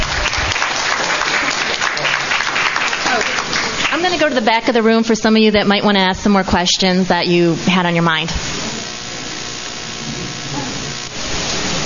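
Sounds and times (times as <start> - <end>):
roomful of people clapping steadily: 0.0 - 4.7
speech: 4.2 - 8.5.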